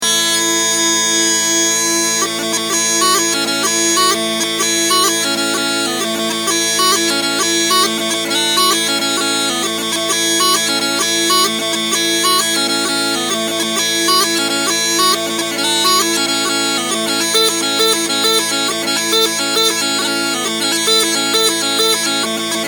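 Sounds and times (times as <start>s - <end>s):
small pipes bagpipes playing: 0.0s - 22.6s.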